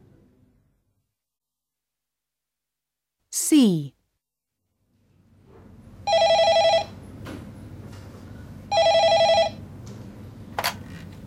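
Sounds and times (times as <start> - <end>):
low hum: 3.3 - 4.1, 4.8 - 11.2
speech: 3.4 - 4.0
telephone at a health advice phone line ringing: 6.1 - 7.0, 8.7 - 9.6.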